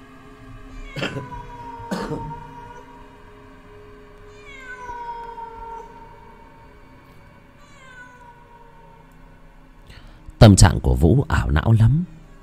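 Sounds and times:
steady tonal background: 0:00.0 - 0:12.4
stray cat meowing: 0:00.7 - 0:03.2, 0:04.3 - 0:06.5, 0:07.6 - 0:09.1
speech: 0:01.0 - 0:01.4, 0:02.1 - 0:02.4, 0:10.4 - 0:12.2.

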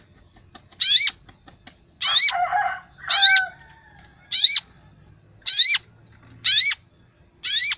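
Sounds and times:
long-tailed shrike calls: 0:00.8 - 0:01.2, 0:02.0 - 0:03.5, 0:04.3 - 0:04.7, 0:05.5 - 0:05.9, 0:06.4 - 0:06.9, 0:07.4 - 0:07.7.

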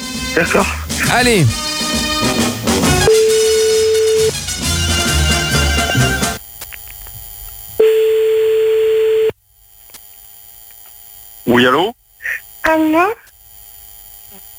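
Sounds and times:
loud music: 0:00.0 - 0:06.4
speech: 0:00.4 - 0:02.0, 0:11.6 - 0:12.0, 0:12.7 - 0:13.2
telephone ringback tone while placing a call: 0:03.1 - 0:04.3, 0:07.8 - 0:09.3.

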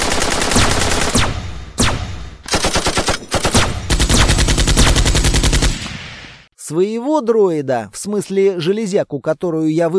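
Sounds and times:
rapid automatic gunfire bursts in a firefight against droid targets: 0:00.0 - 0:01.9, 0:02.5 - 0:05.8
speech: 0:06.7 - 0:09.9.

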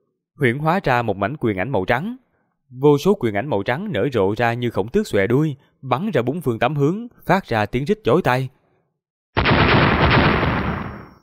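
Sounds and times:
speech: 0:00.4 - 0:08.6
heavy explosive blast: 0:09.4 - 0:11.2.

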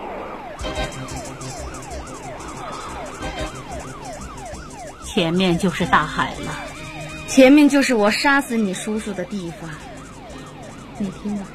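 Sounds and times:
police car siren wailing: 0:00.0 - 0:11.5
low rumble of road traffic: 0:00.3 - 0:11.5
speech: 0:05.2 - 0:06.7, 0:07.4 - 0:09.9, 0:11.0 - 0:11.5.

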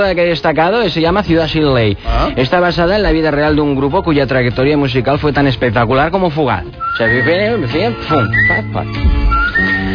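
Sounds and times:
speech: 0:00.0 - 0:09.7
lower-pitched musical backing: 0:00.0 - 0:09.9
whistling trio performing a film soundtrack melody: 0:06.7 - 0:09.9.

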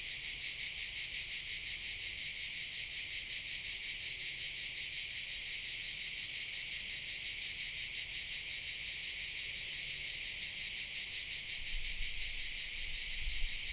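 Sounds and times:
cicada chorus in pine shade in the park of the Certosa di Padula: 0:00.0 - 0:13.7.

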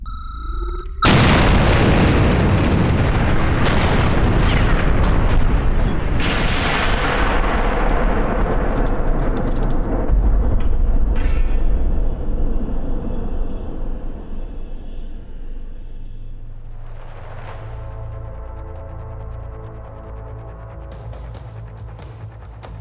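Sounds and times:
cracking blasts: 0:01.0 - 0:12.6
bomb explosion: 0:01.0 - 0:14.6.

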